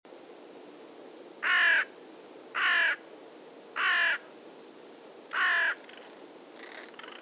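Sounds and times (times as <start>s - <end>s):
carrion crow Corvus corone cawing: 1.4s - 1.9s, 2.6s - 3.0s, 3.8s - 4.2s, 5.3s - 6.0s.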